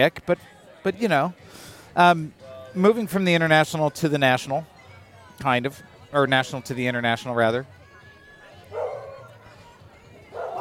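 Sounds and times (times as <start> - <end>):
speech: 0.0 - 4.7, 5.4 - 7.8
murmur of chatter on an outdoor tap room patio in Chicago in summer: 0.0 - 10.6
dog barking on an outdoor tap room patio in Chicago in summer: 8.7 - 9.3, 10.3 - 10.6.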